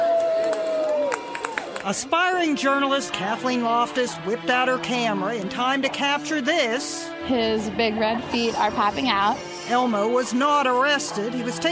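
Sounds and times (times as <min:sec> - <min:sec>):
scattered claps: 0:00.0 - 0:02.2
crowd cheering and whooping: 0:00.0 - 0:02.6
speech: 0:01.8 - 0:11.7.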